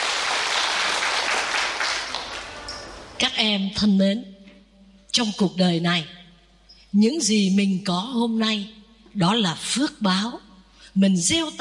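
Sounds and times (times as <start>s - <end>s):
crowd applauding: 0.0s - 3.1s
speech: 3.2s - 4.3s, 5.2s - 6.2s, 6.9s - 11.5s.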